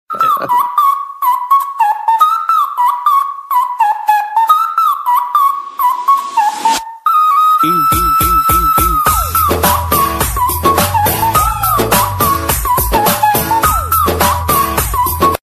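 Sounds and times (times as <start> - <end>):
flute ringtone: 0.2 - 15.4.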